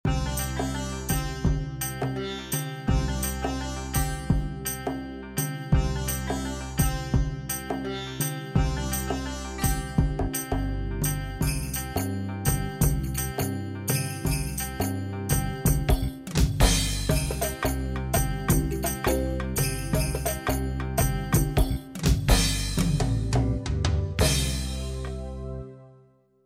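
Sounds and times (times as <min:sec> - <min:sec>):
music in C major from India: 0:00.0 - 0:26.0.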